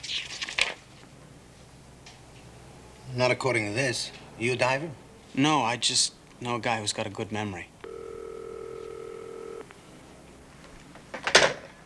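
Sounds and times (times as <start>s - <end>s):
speech: 3.1s - 7.7s
electronic telephone ring tone through a handset: 7.8s - 9.7s.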